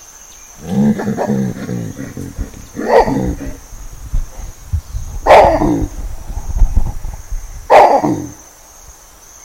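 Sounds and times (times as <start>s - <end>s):
baboon loud hoarse lost call barking separated from its troop: 0.6s - 3.6s, 5.2s - 5.9s, 7.7s - 8.4s
low rumbling and shuffling noise: 0.7s - 7.7s.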